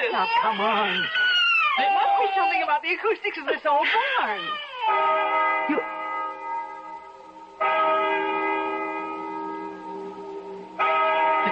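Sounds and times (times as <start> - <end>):
speech: 0.2 - 1.2, 1.8 - 6.0
large bell tolling: 4.9 - 11.5.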